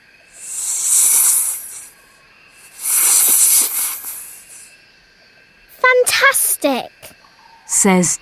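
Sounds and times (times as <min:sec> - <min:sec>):
snake hissing: 0:00.3 - 0:04.8
speech: 0:06.2 - 0:06.9, 0:07.8 - 0:08.2.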